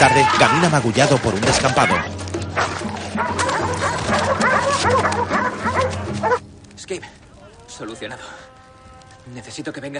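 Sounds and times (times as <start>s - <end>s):
speech: 0.0s - 2.2s, 6.9s - 7.2s, 7.8s - 8.4s, 9.2s - 9.9s
ferocious dogs barking and snarling while attacking people: 1.2s - 6.4s
dogs whimpering: 1.8s - 6.4s.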